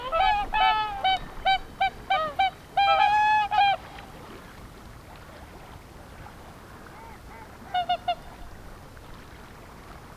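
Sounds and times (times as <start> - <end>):
whooper swans trumpeting on the Peene river: 0.0 - 3.7.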